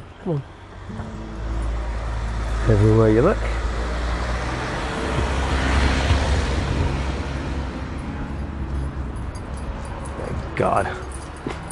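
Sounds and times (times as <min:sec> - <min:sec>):
broadband road noise: 0:00.0 - 0:11.6
speech: 0:00.2 - 0:01.3, 0:02.6 - 0:03.6, 0:10.6 - 0:11.0
workmen's vehicle engine rumbling past: 0:00.8 - 0:07.8.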